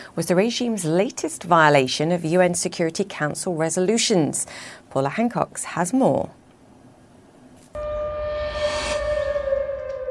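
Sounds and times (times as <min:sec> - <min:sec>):
speech: 0:00.1 - 0:06.4
civil defense warning siren wailing outdoors in Seoul or Okinawa: 0:07.8 - 0:10.0.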